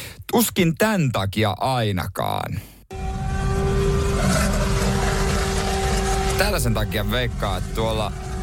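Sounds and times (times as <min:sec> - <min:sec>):
speech: 0:00.3 - 0:02.7, 0:06.4 - 0:08.2
Toyota C-HR small hybrid car engine revving: 0:02.9 - 0:08.4.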